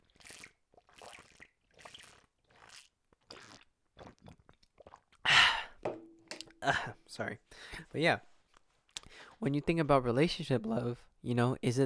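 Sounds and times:
person drinking water with gulps and swallows: 0.0s - 7.0s, 8.9s - 9.4s
speech: 6.6s - 8.3s, 9.4s - 11.8s.

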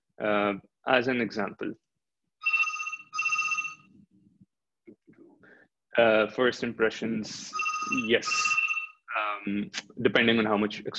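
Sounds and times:
speech: 0.2s - 1.8s, 6.0s - 8.6s, 9.4s - 10.9s
phone ringing during a lecture: 2.4s - 3.9s, 7.5s - 9.1s.

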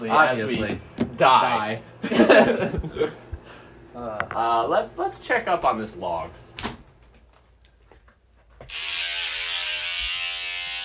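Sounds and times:
speech: 0.0s - 3.2s, 4.0s - 6.4s
laughter: 2.0s - 3.3s
electric shaver shaving a head: 8.6s - 10.8s.

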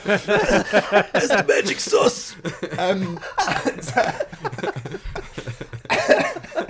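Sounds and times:
speech: 0.0s - 5.2s
laughter: 0.0s - 6.6s
harsh coughing: 0.3s - 6.6s
breathy voiced sounds: 1.4s - 5.8s.

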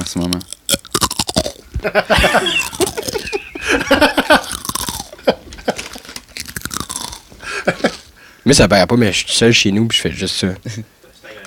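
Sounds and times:
wet mouth sounds: 0.0s - 3.7s, 4.3s - 5.2s, 6.3s - 7.3s
crunching and chewing dense rye bread: 0.0s - 8.1s
speech: 0.1s - 0.6s, 1.8s - 4.6s, 8.5s - 11.0s
laughter: 1.7s - 6.0s, 7.4s - 8.1s.

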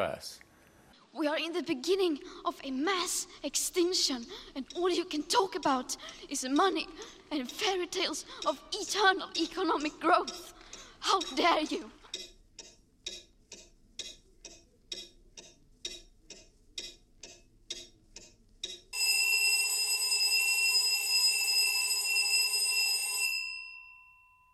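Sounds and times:
speech: 0.0s - 0.4s, 1.2s - 12.3s
clock ticking: 1.4s - 19.0s
loud shrill alarm clock bell ringing: 18.9s - 24.5s.

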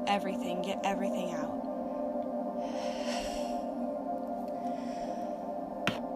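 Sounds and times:
speech: 0.0s - 1.7s
steady quiet musical drone: 0.0s - 6.1s
slow deep breath in through the nose during a guided breathing exercise: 2.6s - 3.8s, 4.6s - 5.6s.

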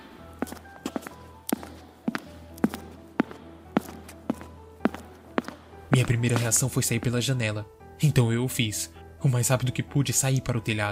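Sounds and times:
footsteps climbing stairs and crossing corridor on a hard surface: 0.0s - 7.3s
speech: 6.0s - 10.9s.

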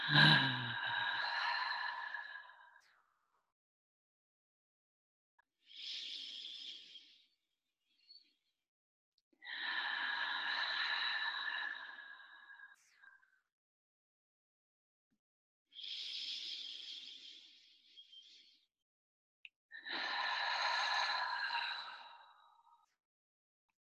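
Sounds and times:
slow deep breathing with long whooshing exhales: 0.0s - 2.9s, 9.5s - 13.3s, 15.8s - 18.6s, 19.8s - 22.8s.

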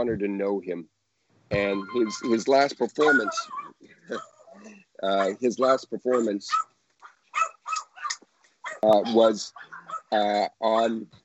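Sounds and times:
man talking and laughing: 0.0s - 0.8s, 1.6s - 3.5s, 5.0s - 6.5s, 8.8s - 9.5s, 10.2s - 11.0s
speech: 0.0s - 6.7s, 8.8s - 11.2s
Pomeranian dogs barking and whimpering in high-pitched yips: 3.0s - 5.4s, 6.1s - 6.7s, 7.3s - 10.2s.

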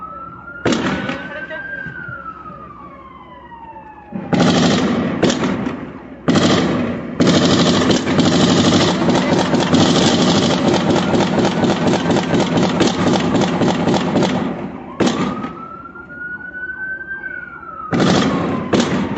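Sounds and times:
falling siren-like tone: 0.0s - 4.5s, 14.6s - 19.1s
bursts of gunfire: 0.6s - 1.4s, 4.2s - 15.6s, 17.9s - 19.1s.

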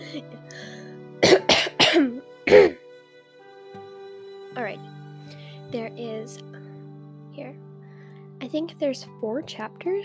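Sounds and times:
faint low tonal background: 0.0s - 10.0s
speech: 0.1s - 0.7s, 8.5s - 10.0s
loud coughs: 1.2s - 2.8s.

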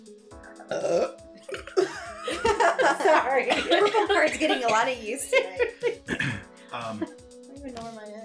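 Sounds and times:
long rasping croaky burp: 0.6s - 1.7s, 6.1s - 6.5s
laughter: 1.5s - 7.1s
speech: 3.0s - 5.9s, 6.7s - 7.2s.

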